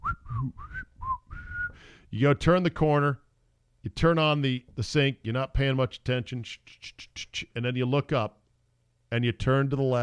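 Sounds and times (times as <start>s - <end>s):
person whistling a short simple tune: 0.0s - 1.8s
speech: 2.1s - 3.2s, 3.8s - 8.4s, 9.1s - 10.0s.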